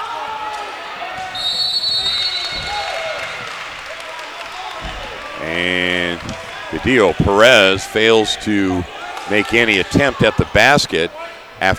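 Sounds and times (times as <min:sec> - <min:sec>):
referee whistle blast for a basketball turnover: 0:01.3 - 0:03.4
basketball thumping on the court: 0:02.0 - 0:03.5, 0:04.8 - 0:05.2
crowd murmur: 0:02.5 - 0:11.7
speech: 0:05.5 - 0:11.7.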